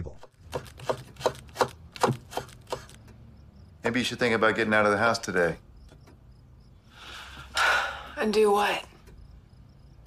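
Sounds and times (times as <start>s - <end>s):
knife chopping vegetables in a kitchen: 0.4s - 2.9s
speech: 3.9s - 5.7s, 8.2s - 8.9s.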